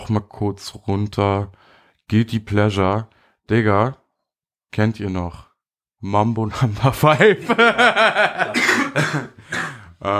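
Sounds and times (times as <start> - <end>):
speech: 0.1 - 4.0, 4.7 - 10.1
person laughing: 7.3 - 9.5
person coughing: 8.4 - 10.0.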